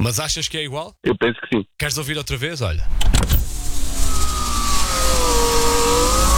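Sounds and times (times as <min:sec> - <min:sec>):
speech: 0:00.0 - 0:03.4
low car engine hum: 0:02.9 - 0:06.3
electric window motor whining as car glass is lowered: 0:03.0 - 0:06.3.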